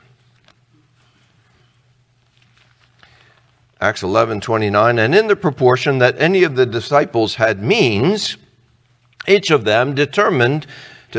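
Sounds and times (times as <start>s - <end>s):
bible pages turning: 0.0s - 1.2s, 2.1s - 3.8s
steady low hum: 0.0s - 11.1s
speech: 3.8s - 8.4s, 9.3s - 11.1s.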